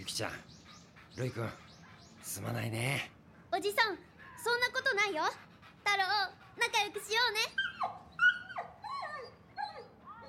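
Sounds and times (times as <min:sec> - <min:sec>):
speech: 0:00.2 - 0:00.5, 0:01.2 - 0:07.9
young puppy whimpering and whining: 0:07.4 - 0:10.2.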